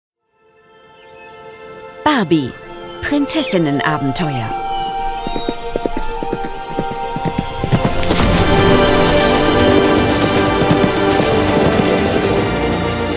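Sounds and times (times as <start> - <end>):
speech: 2.2 - 4.6
white horse hooves clip-clopping ridden through a forest: 4.0 - 13.1.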